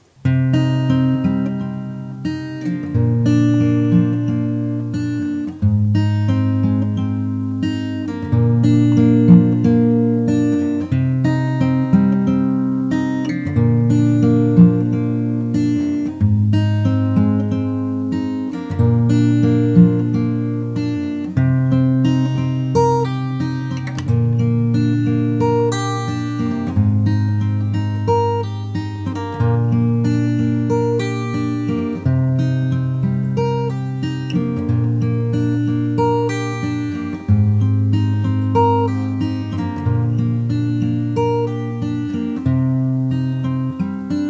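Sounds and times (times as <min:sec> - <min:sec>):
fingerstyle guitar ear study exercise: 0:00.0 - 0:44.2.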